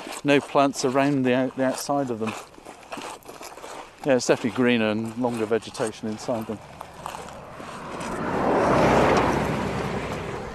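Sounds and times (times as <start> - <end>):
speech: 0.2 - 2.5, 4.0 - 6.8
car speeding along a straight coastal road: 7.4 - 10.5.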